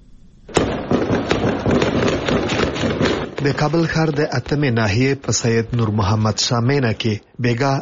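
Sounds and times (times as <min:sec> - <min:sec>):
gunfire during an armed raid on a hideout in Kabul: 0:00.5 - 0:05.8
speech: 0:03.4 - 0:07.8.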